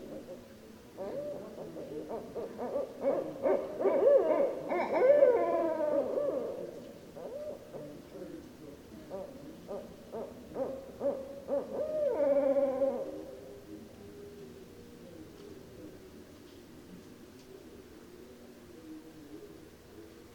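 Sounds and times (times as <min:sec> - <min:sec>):
barred owl hooting and cackling: 0:00.0 - 0:08.4, 0:09.0 - 0:13.8.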